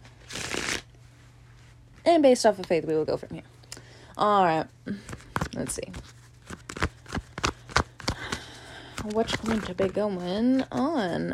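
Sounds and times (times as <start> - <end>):
deck of tarot cards being shuffled: 0.0 - 0.9, 5.0 - 11.1
speech: 2.1 - 3.6, 4.2 - 6.2, 9.0 - 11.3.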